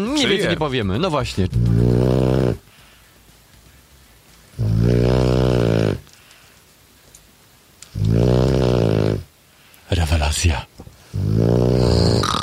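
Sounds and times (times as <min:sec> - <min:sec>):
speech: 0:00.0 - 0:02.8, 0:04.8 - 0:05.0, 0:10.3 - 0:10.8, 0:11.4 - 0:12.4
loud deep rumbling snores: 0:01.6 - 0:02.7, 0:04.6 - 0:06.2, 0:07.9 - 0:09.3, 0:11.1 - 0:12.4.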